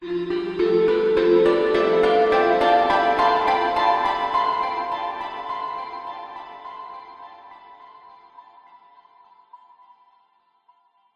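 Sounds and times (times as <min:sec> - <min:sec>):
heavenly dreamy plucked musical swell: 0:00.0 - 0:07.1.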